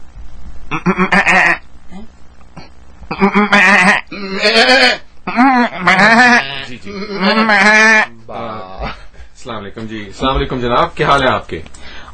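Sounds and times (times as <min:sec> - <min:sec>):
faint low hum: 0:00.0 - 0:12.1
goats bleating at a goat market: 0:00.7 - 0:01.6, 0:03.1 - 0:08.1
speech: 0:00.7 - 0:02.2, 0:03.2 - 0:07.8, 0:09.6 - 0:11.8.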